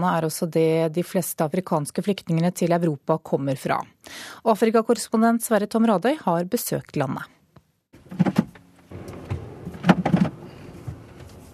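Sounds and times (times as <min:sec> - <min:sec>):
speech: 0:00.0 - 0:07.4
Land Cruiser shifting into low crawl gear on a steep slippery road in Eritrea: 0:08.0 - 0:11.5.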